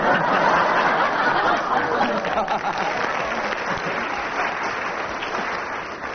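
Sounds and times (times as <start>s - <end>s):
scattered laughter: 0.0s - 4.4s
audience applause: 0.0s - 6.1s.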